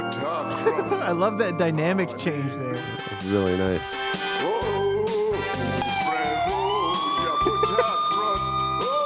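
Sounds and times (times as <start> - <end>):
speech: 0.2 - 4.2
laughter: 0.4 - 1.3, 7.2 - 8.5
music with a pulsing rhythmic bass beat: 2.8 - 9.0
emergency vehicle siren wailing: 5.6 - 9.0.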